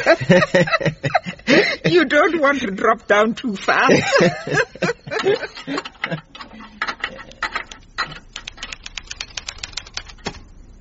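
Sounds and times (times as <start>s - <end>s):
laughter: 0.0s - 2.2s, 3.8s - 6.5s
speech: 0.0s - 6.2s
rapid typing on a typewriter or keyboard: 5.6s - 10.4s.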